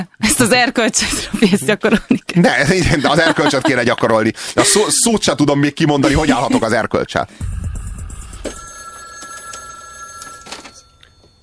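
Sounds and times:
speech: 0.0 - 7.7
laughter: 1.4 - 5.0, 6.0 - 6.9
telephone ringing inside a public phone booth: 8.1 - 11.4.

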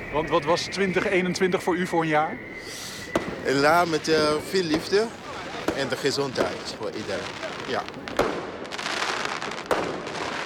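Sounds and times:
fireworks exploding on New Year's night in Utrecht: 0.0 - 10.4
speech: 0.1 - 5.2, 5.8 - 8.3
sharp firework bang: 2.9 - 10.4.

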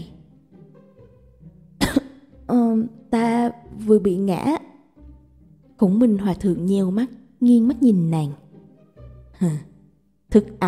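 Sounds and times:
woman giving a dry harsh cough: 1.8 - 2.3
speech: 2.5 - 4.7, 5.8 - 8.4, 9.4 - 9.7, 10.3 - 10.6.

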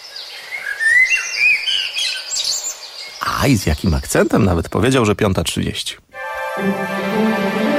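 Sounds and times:
common blackbird singing: 0.0 - 5.0
speech: 3.4 - 6.0, 6.6 - 7.6.

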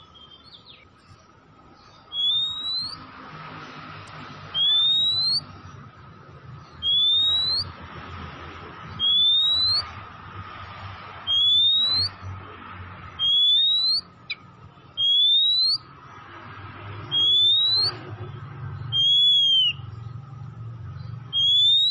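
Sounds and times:
Oriental magpie-robin repeating a long rising whistle: 2.0 - 3.1, 4.4 - 5.6, 6.6 - 7.8, 8.9 - 10.0, 11.2 - 12.2, 13.2 - 14.4, 15.0 - 15.9, 17.0 - 18.0, 18.9 - 20.0, 21.3 - 21.8.

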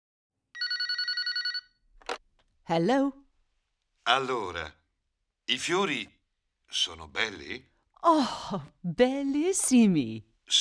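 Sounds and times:
telephone bell ringing in a bright trilling burst: 0.6 - 2.2
speech: 2.7 - 3.2, 4.0 - 4.8, 5.5 - 10.5.

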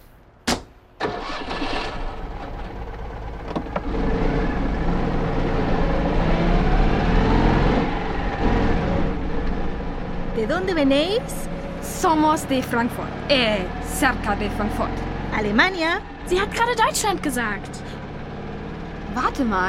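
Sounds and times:
sharp thump: 0.4 - 0.8
car engine cranking, catching and running as the vehicle moves off: 0.9 - 19.6
speech: 10.4 - 17.9, 19.2 - 19.6.

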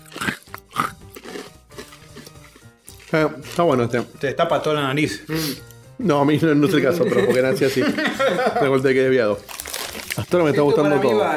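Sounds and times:
wet mouth sounds: 0.0 - 3.6
person chewing a crunchy sweet and spicy snack: 0.0 - 4.2, 9.4 - 10.3
speech: 3.1 - 9.5, 10.2 - 11.3
laughter: 6.6 - 8.8, 10.4 - 11.3.

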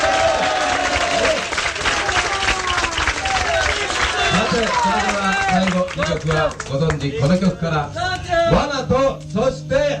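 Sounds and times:
concert audience applause in a live music hall: 0.0 - 7.2
speech: 4.8 - 9.9.

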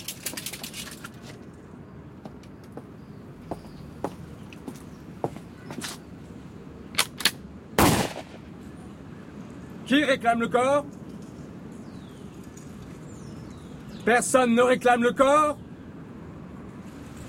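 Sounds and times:
low hum: 0.0 - 17.2
firing squad rifle volley at an execution: 7.8 - 8.6
speech: 9.9 - 11.0, 14.1 - 15.6.

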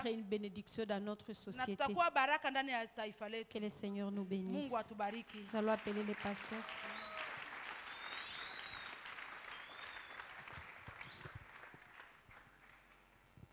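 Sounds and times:
speech: 0.0 - 7.0
church congregation applauding during a service: 5.1 - 13.5.

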